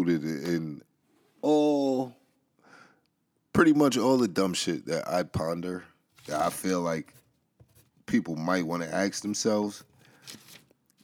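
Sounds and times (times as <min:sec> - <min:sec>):
speech: 0:00.0 - 0:00.7, 0:03.6 - 0:07.2, 0:08.1 - 0:10.4
paper notes rustling while being handled: 0:06.1 - 0:11.0.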